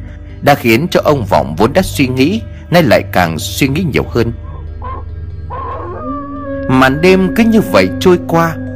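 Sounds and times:
speech: 0.4 - 4.5, 6.7 - 8.6
dog howling in a village at night: 4.5 - 7.0.

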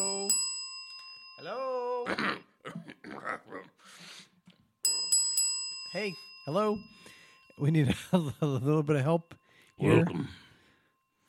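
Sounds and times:
single bright bell ringing: 0.0 - 1.9, 4.8 - 11.2
speech: 1.5 - 4.3, 5.9 - 10.5.

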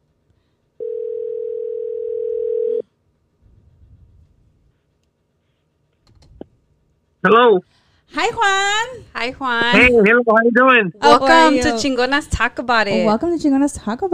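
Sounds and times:
outgoing call ring tone on a telephone line: 0.8 - 2.8
speech: 7.2 - 14.1.

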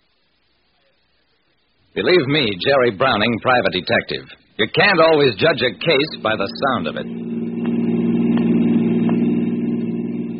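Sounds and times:
speech: 2.0 - 7.3
car engine drone while driving: 4.6 - 10.3.

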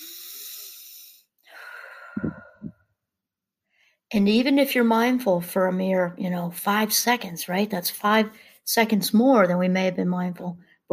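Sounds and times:
slow deep breath during a guided mindfulness exercise: 0.0 - 2.9, 3.6 - 4.1
speech: 4.1 - 10.9.

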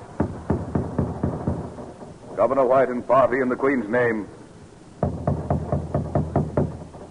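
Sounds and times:
knocking on the heavy wooden gate of a stockade: 0.2 - 2.1, 5.0 - 7.0
speech: 2.4 - 4.4.

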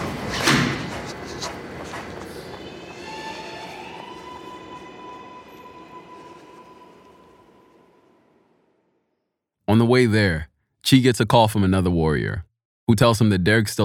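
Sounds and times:
train rumbling: 0.0 - 8.8
metallic squeals from braking train wheels: 2.5 - 7.8
speech: 9.7 - 13.8.

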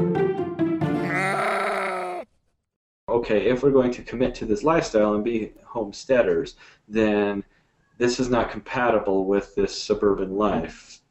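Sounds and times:
goat on a suburban homestead bleating: 1.0 - 2.3
speech: 3.2 - 11.0.

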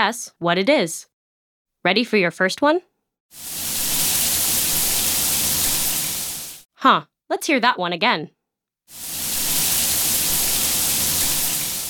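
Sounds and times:
speech: 0.0 - 1.1, 1.8 - 3.6, 6.8 - 9.1
hot shower spraying water: 3.4 - 6.7, 8.9 - 11.8.

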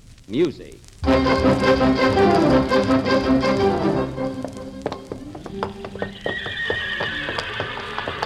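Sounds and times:
speech: 0.3 - 4.2
racehorse hoof clops on a hard surface in a paddock: 2.2 - 8.2
racehorse whinnies in a paddock: 6.0 - 8.2.

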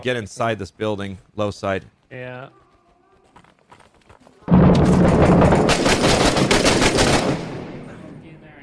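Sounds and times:
speech: 0.0 - 2.6
heavy gunfire in a war video game set in Fallujah: 4.5 - 8.2
mortar explosions in a war video game set in Fallujah: 4.5 - 8.3.

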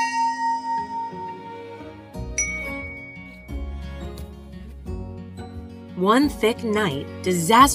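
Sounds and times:
fog bell ringing: 0.0 - 1.8, 2.4 - 3.6
speech: 6.0 - 7.7.

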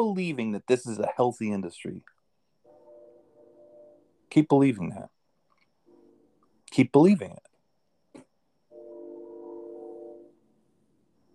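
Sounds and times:
speech: 0.0 - 2.2, 4.3 - 5.2, 6.7 - 7.5
train horn blast: 2.7 - 4.0, 8.7 - 10.4.

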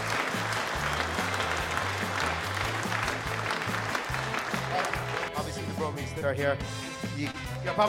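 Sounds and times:
large crowd applauding at a packed comedy club in Dublin: 0.0 - 5.9
low stepping bass line of music: 0.0 - 7.8
speech: 6.0 - 7.8.

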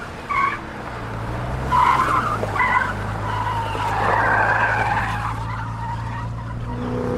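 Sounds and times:
car engine droning: 0.0 - 7.1
car tires screeching and skidding as the car swerves: 0.0 - 7.1.

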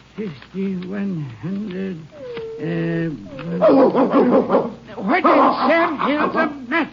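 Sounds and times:
speech: 0.2 - 6.9
person imitating a nervous dog growling and barking at night: 2.0 - 4.8.

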